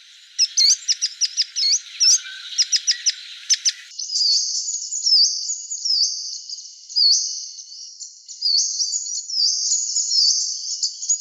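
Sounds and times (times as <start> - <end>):
Varied sittella chattering calls: 0.0 - 3.9.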